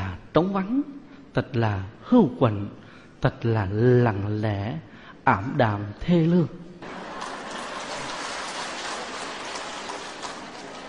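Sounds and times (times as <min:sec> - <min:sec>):
speech: 0:00.4 - 0:07.0
steady rain falling: 0:06.8 - 0:10.8.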